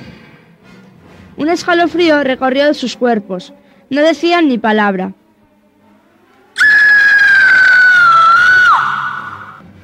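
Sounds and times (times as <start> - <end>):
speech: 1.4 - 5.2
high-pitched scream: 6.5 - 9.6.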